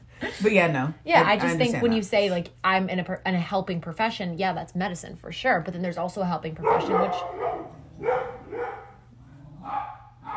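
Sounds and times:
speech: 0:00.2 - 0:08.3
dogs barking: 0:06.6 - 0:10.3.

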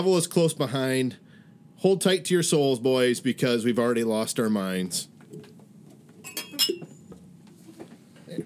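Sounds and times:
speech: 0:00.0 - 0:01.2, 0:01.8 - 0:05.5
drinking glasses clinking in a toast: 0:06.2 - 0:07.0.

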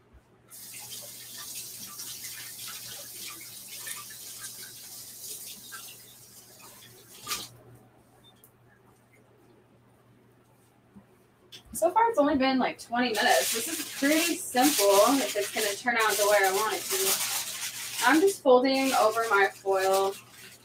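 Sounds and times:
running tap water while rinsing hands: 0:00.5 - 0:07.6, 0:13.0 - 0:20.6
speech: 0:11.8 - 0:17.3, 0:18.0 - 0:20.2.

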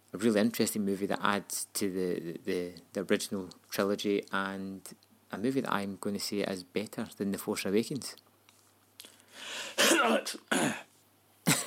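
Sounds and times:
speech: 0:00.1 - 0:08.2, 0:09.4 - 0:10.8
person clearing throat in harsh raspy bursts: 0:09.8 - 0:10.9, 0:11.5 - 0:11.6.

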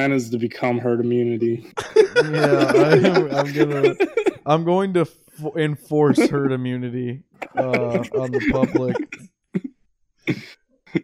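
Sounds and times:
speech: 0:00.0 - 0:09.3, 0:10.3 - 0:11.0
laughter: 0:01.0 - 0:09.2
harsh raspy coughs: 0:01.8 - 0:04.5, 0:06.0 - 0:06.5, 0:07.4 - 0:09.7.

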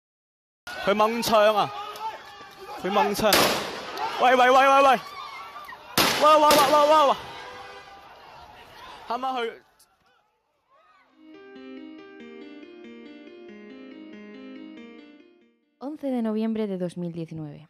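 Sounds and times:
speech: 0:00.7 - 0:01.9, 0:02.8 - 0:03.6, 0:04.2 - 0:05.2, 0:06.2 - 0:07.3, 0:09.1 - 0:09.6, 0:15.9 - 0:17.6
frantic shouting voices during a street clash: 0:00.7 - 0:11.2
gunshots during street protest clashes: 0:03.2 - 0:04.0, 0:06.0 - 0:06.9.

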